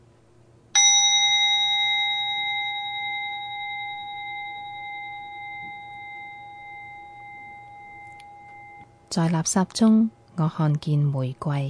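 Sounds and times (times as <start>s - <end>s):
single bell ringing: 0.8s - 8.9s
speech: 9.1s - 11.6s.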